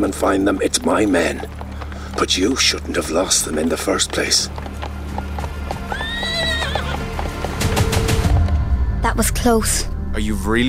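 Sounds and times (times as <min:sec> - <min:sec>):
speech: 0:00.0 - 0:01.6, 0:02.2 - 0:04.7, 0:09.2 - 0:10.6
hooves clip-clopping: 0:00.0 - 0:08.7
horse whinnying: 0:05.4 - 0:07.5.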